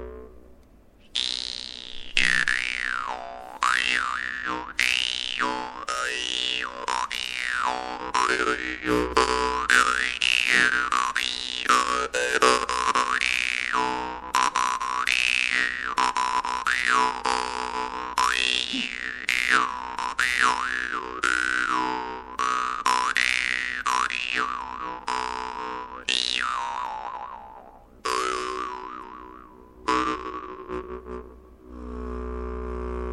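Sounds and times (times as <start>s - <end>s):
small vargan jaw harp: 1.1s - 33.0s.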